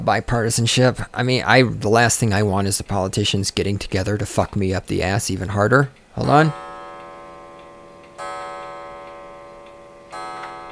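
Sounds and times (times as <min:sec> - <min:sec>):
speech: 0:00.0 - 0:06.6
clock chiming the hour with bell strikes: 0:06.2 - 0:10.7.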